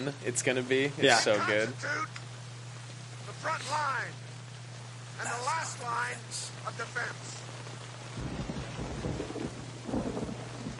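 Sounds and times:
speech: 0:00.0 - 0:02.2, 0:03.4 - 0:04.2, 0:05.2 - 0:07.4
steady heavy rain: 0:00.9 - 0:10.7
faint low hum: 0:01.8 - 0:10.7
deep rolls of thunder: 0:08.1 - 0:10.7.

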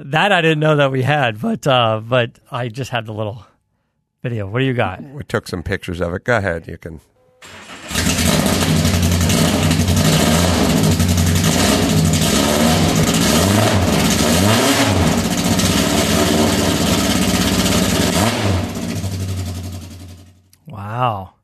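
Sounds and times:
speech: 0:00.0 - 0:03.5, 0:04.2 - 0:08.4, 0:21.0 - 0:21.4
car engine rumbling and revving: 0:07.4 - 0:20.4.

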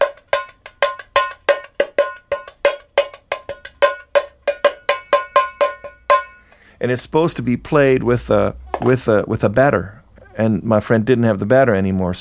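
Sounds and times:
small Brazilian repique drum being played: 0:00.0 - 0:06.8, 0:08.5 - 0:09.0
speech: 0:06.8 - 0:12.1.

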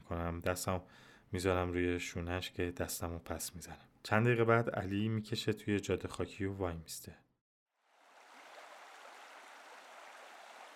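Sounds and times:
speech: 0:00.1 - 0:07.2
river rushing: 0:08.0 - 0:10.7.

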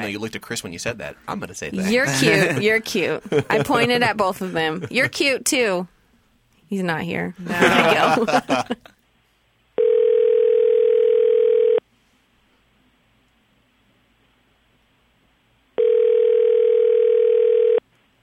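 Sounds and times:
speech: 0:00.0 - 0:05.9, 0:06.7 - 0:08.9
laughter: 0:01.8 - 0:05.4, 0:07.4 - 0:09.0
telephone ringback tones: 0:09.8 - 0:11.8, 0:15.8 - 0:17.8.

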